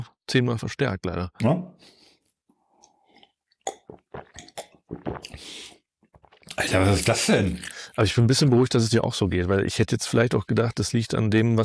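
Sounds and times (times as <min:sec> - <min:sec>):
speech: 0:00.3 - 0:02.0, 0:04.9 - 0:05.8, 0:06.5 - 0:11.6
person chewing a small piece of bread: 0:02.3 - 0:06.5.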